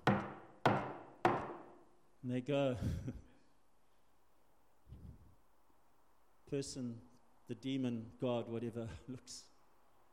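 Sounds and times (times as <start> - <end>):
firm knocks on a door: 0.0 - 1.7
speech: 2.2 - 3.3, 6.5 - 9.5.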